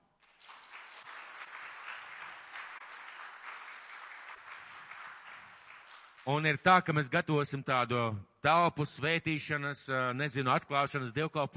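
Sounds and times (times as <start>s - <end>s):
audience applauding with many hands clapping: 0.2s - 6.5s
speech: 6.2s - 11.5s.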